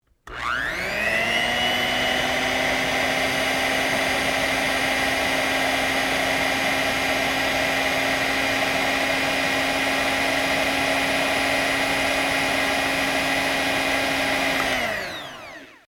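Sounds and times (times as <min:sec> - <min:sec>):
hand mixer: 0:00.2 - 0:15.8.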